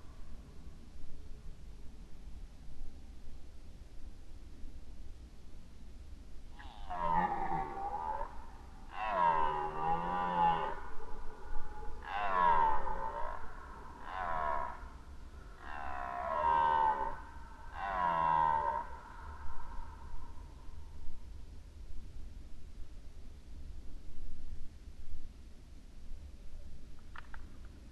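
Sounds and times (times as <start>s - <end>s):
red deer roaring during the rut: 6.6s - 11.0s, 11.7s - 15.0s, 15.6s - 20.0s.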